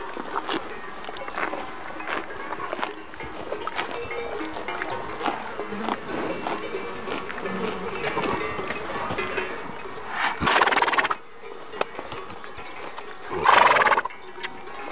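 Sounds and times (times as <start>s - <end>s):
buzz of insects: 0.0s - 14.9s
hooves clip-clopping: 0.0s - 14.9s
horses whinnying: 3.7s - 11.3s, 13.2s - 14.2s.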